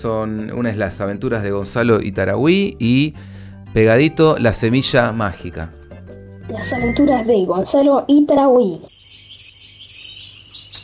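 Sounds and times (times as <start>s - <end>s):
speech: 0.0s - 5.8s, 6.5s - 9.0s
birds chirping and singing on a sunny day: 6.5s - 10.8s.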